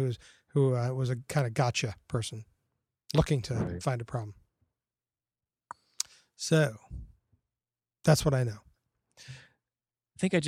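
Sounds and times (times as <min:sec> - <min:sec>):
speech: 0:00.0 - 0:02.5, 0:03.1 - 0:04.4, 0:06.4 - 0:07.0, 0:08.0 - 0:09.4, 0:10.2 - 0:10.4
person exhaling on a microphone: 0:09.2 - 0:09.6.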